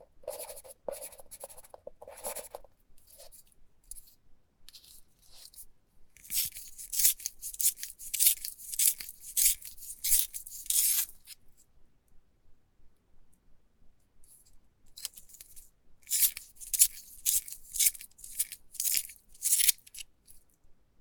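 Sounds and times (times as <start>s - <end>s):
pencil sharpening: 0.0s - 3.4s, 6.2s - 11.3s, 15.0s - 20.4s.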